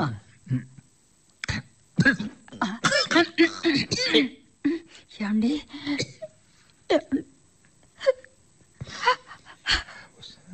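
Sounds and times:
speech: 0:00.0 - 0:00.7, 0:04.1 - 0:04.4, 0:05.2 - 0:06.1
woman crying and sobbing: 0:02.6 - 0:07.3, 0:08.0 - 0:10.2.

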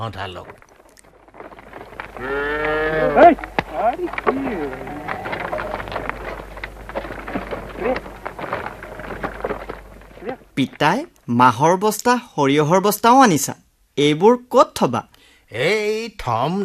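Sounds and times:
speech: 0:00.0 - 0:00.7, 0:02.2 - 0:05.0, 0:10.6 - 0:16.6
rustling and shuffling: 0:00.0 - 0:12.1
cattle lowing in a farm shed: 0:00.4 - 0:10.8.

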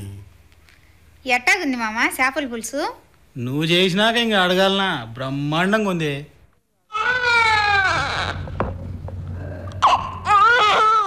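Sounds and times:
speech: 0:01.2 - 0:06.3
young boy crying in loud wavering wails and sobs: 0:07.0 - 0:08.5, 0:09.8 - 0:11.0.

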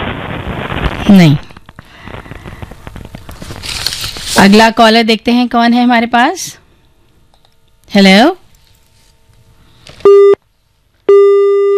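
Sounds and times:
speech: 0:01.1 - 0:01.5, 0:04.4 - 0:06.6, 0:07.9 - 0:08.4
telephone busy tone after a disconnected call: 0:11.1 - 0:11.7.

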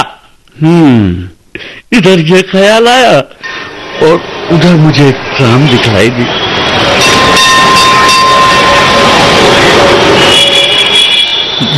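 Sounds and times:
speech: 0:00.6 - 0:01.3, 0:01.9 - 0:03.4, 0:04.0 - 0:06.4
tram rumbling along its rails: 0:03.4 - 0:11.7
high metallic tram wheel squeals: 0:06.3 - 0:11.7.

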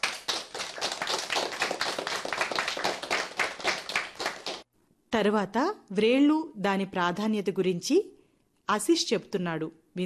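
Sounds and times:
audience clapping for children who sang: 0:00.0 - 0:04.7
speech: 0:05.2 - 0:10.0.

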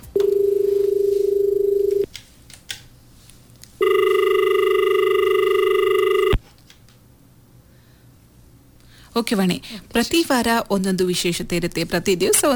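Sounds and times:
telephone ringing for an incoming call: 0:00.1 - 0:02.1, 0:03.8 - 0:06.4
speech: 0:09.2 - 0:12.5.

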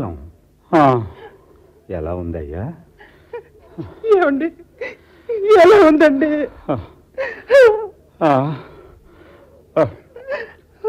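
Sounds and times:
speech: 0:00.0 - 0:01.1, 0:01.9 - 0:02.9, 0:03.8 - 0:08.7, 0:09.8 - 0:10.0
person sobbing, whimpering and wailing: 0:03.1 - 0:08.8, 0:09.8 - 0:10.8.

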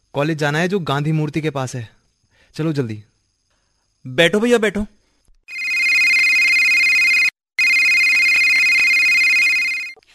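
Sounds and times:
speech: 0:00.2 - 0:03.1, 0:04.0 - 0:05.6
mobile phone ringing with a steady electronic tone: 0:05.5 - 0:10.0.

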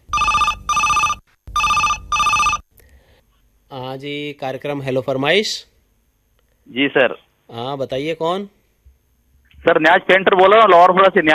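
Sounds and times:
telephone ringing for incoming call: 0:00.0 - 0:02.6
speech: 0:03.9 - 0:05.7, 0:06.7 - 0:08.6, 0:09.6 - 0:11.3.

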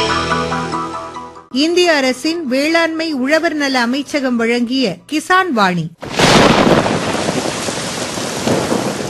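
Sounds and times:
speech: 0:01.5 - 0:06.1
heavy rain pouring: 0:06.0 - 0:09.0
thunder rumble: 0:06.0 - 0:09.0.

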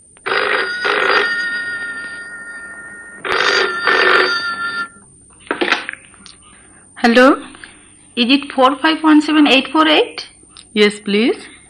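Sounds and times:
telephone ringing with shrill electronic double rings in a home: 0:00.2 - 0:05.0
speech: 0:07.0 - 0:07.5, 0:08.2 - 0:11.6.

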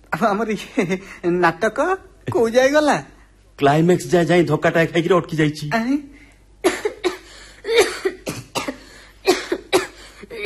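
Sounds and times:
speech: 0:00.2 - 0:06.1
person coughing: 0:06.6 - 0:10.4.

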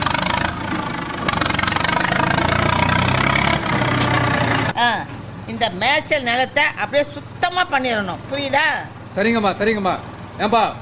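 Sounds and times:
JCB excavator engine starting and idling on a site being cleared for a factory: 0:00.0 - 0:10.8
speech: 0:05.6 - 0:10.8.

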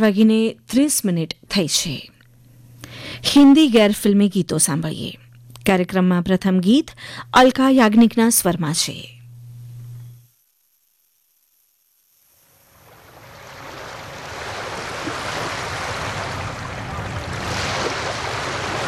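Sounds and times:
speech: 0:00.0 - 0:02.1, 0:03.1 - 0:09.2
short low hum: 0:01.9 - 0:18.8
ocean waves breaking on a rocky shore: 0:12.8 - 0:18.8.

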